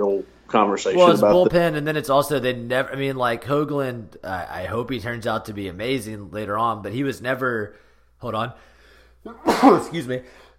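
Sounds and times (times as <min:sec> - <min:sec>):
speech: 0:00.0 - 0:10.5
person sneezing brought on by coffee: 0:09.3 - 0:10.0.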